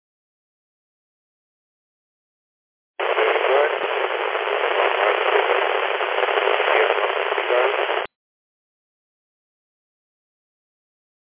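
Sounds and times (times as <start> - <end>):
radio static over a transmission channel: 3.0 - 8.1.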